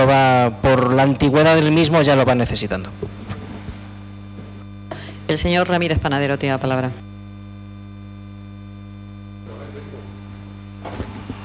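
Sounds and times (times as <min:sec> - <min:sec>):
speech: 0:00.0 - 0:03.3, 0:05.3 - 0:07.0
electric fan humming and whirring: 0:00.0 - 0:11.4.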